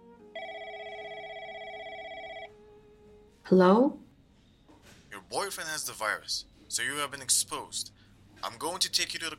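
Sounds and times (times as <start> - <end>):
electronic telephone ringing: 0.4 - 2.5
speech: 3.5 - 4.0, 5.3 - 9.3.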